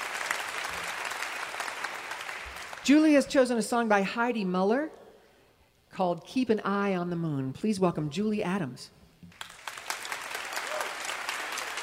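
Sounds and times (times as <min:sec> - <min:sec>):
crowd applause for a musician: 0:00.0 - 0:02.9, 0:09.3 - 0:11.8
speech: 0:02.9 - 0:05.0, 0:06.0 - 0:09.0.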